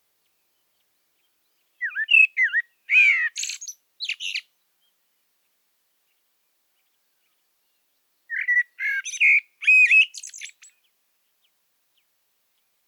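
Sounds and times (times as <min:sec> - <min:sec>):
common blackbird Turdus merula song: 0:00.1 - 0:12.8.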